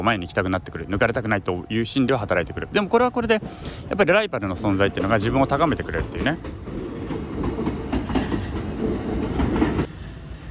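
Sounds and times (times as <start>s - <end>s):
speech: 0.0s - 6.7s
train rumbling past: 0.0s - 10.4s
rhythmic train wheel clatter: 2.3s - 9.9s.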